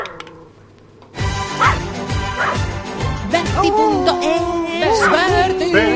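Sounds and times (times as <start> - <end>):
small dog barking: 1.6 - 1.8, 2.4 - 2.7, 4.9 - 5.3
speech: 3.6 - 5.9.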